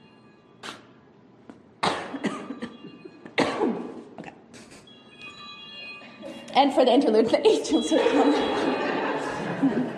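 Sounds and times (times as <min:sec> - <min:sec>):
harsh coughing: 0:01.8 - 0:04.8
speech: 0:06.6 - 0:08.6
laughter: 0:07.9 - 0:09.9.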